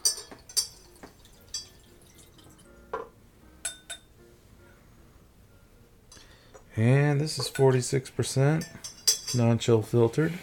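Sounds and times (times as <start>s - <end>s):
light glass clinks: 0.0s - 2.4s, 3.0s - 4.1s, 8.6s - 9.5s
liquid swirling and sloshing inside a glass being rinsed: 0.1s - 2.7s
speech: 6.8s - 10.4s.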